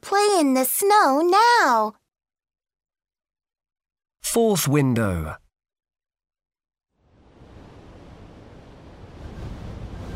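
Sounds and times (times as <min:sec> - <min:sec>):
speech: 0:00.2 - 0:02.0, 0:04.3 - 0:05.4
wind roaring: 0:07.0 - 0:10.1.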